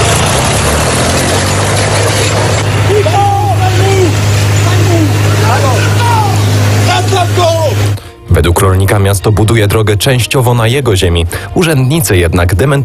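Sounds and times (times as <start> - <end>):
tractor engine running with deep rumble and rough mechanical noise: 0.0 - 8.1
speech: 8.4 - 12.8.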